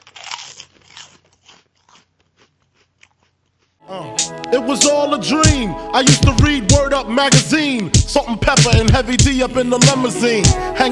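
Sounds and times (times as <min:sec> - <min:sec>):
chewing crispy pork skin: 0:00.0 - 0:03.7
speech: 0:03.9 - 0:10.8.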